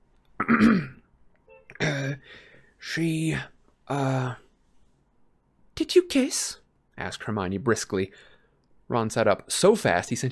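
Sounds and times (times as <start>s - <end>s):
person acting out a character clearing throat: 0.4s - 1.1s, 1.7s - 2.2s
speech: 0.5s - 0.9s, 2.1s - 4.4s, 5.8s - 8.3s, 8.9s - 10.3s.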